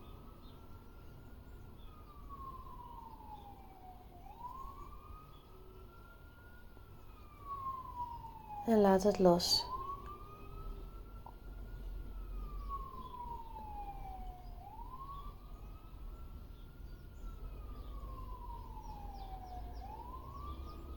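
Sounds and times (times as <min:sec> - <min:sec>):
wailing siren heard from outside: 0:00.0 - 0:20.9
steady rumble of traffic: 0:04.4 - 0:20.9
speech: 0:08.7 - 0:09.7.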